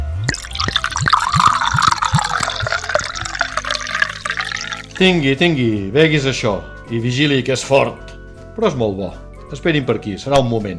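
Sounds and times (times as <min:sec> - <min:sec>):
Marc de Banyuls brandy poured from a minibar bottle into a glass: 0:00.2 - 0:05.2
speech: 0:05.0 - 0:10.7.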